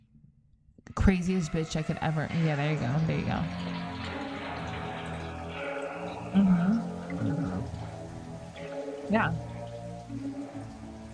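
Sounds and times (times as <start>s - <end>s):
speech: 1.0s - 3.7s, 9.1s - 9.5s
shower water running: 1.4s - 11.1s
voice bursts: 6.3s - 7.8s.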